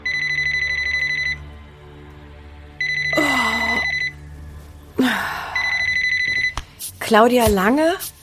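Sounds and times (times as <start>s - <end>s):
mobile phone ringing at night: 0.0s - 1.5s, 2.8s - 4.2s, 5.6s - 6.6s
drowsy person groaning and murmuring: 3.2s - 3.9s, 5.0s - 5.6s
speech: 7.1s - 8.1s.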